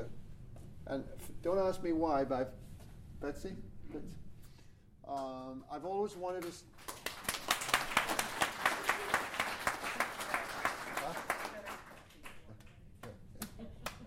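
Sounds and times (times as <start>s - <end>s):
speech: 0.9s - 4.2s, 5.1s - 7.0s
audience clapping in a brisk rhythmic beat: 6.4s - 14.0s.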